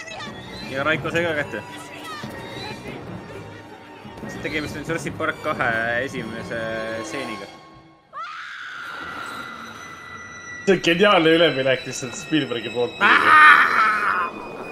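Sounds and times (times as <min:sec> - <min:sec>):
speech: 0:00.7 - 0:02.4, 0:04.3 - 0:07.6, 0:10.7 - 0:14.5
mother screaming in a film scene: 0:08.1 - 0:09.0, 0:13.0 - 0:14.4.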